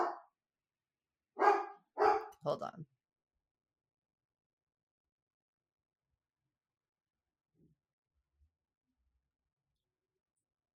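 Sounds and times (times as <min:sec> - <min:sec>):
dog barking as the mailman arrives: 0:00.0 - 0:00.3, 0:01.4 - 0:02.4
speech: 0:02.4 - 0:03.0.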